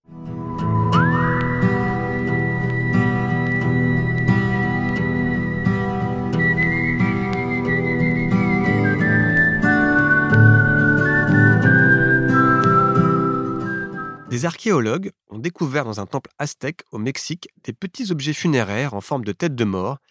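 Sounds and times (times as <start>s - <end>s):
steady instrumental accompaniment: 0.1s - 14.3s
whistled melody from a 1972 whistled piece: 0.2s - 14.4s
speech: 14.4s - 20.0s.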